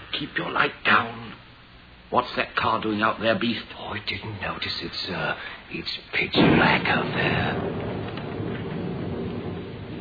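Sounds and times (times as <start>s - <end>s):
speech: 0.2s - 1.4s, 2.1s - 7.8s
low thunder rumble during a night-time lightning storm: 6.3s - 9.9s
rain pouring during a night-time lightning storm: 6.6s - 9.9s.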